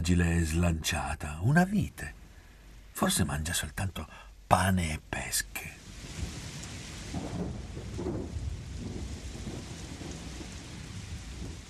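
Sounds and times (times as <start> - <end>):
speech: 0.0 - 2.2, 3.0 - 6.3
heavy rain pouring in a thunderstorm: 0.0 - 11.6
low rolling thunder: 5.8 - 11.6.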